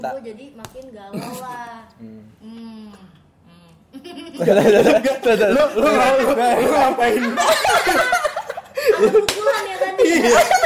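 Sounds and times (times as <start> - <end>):
speech: 0.0 - 3.2, 3.9 - 8.3, 8.9 - 10.6
people laughing and chuckling: 4.0 - 10.6
sharp slap: 9.2 - 9.5.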